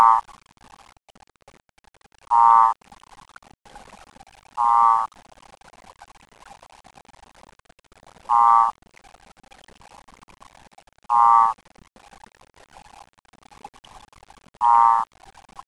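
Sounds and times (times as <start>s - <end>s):
Cordoba escuerzo Odontophrynus cordobae advertisement calls at 19.7 C: 0.0s - 0.2s, 2.3s - 2.8s, 4.6s - 5.1s, 8.3s - 8.7s, 11.1s - 11.6s, 14.6s - 15.1s.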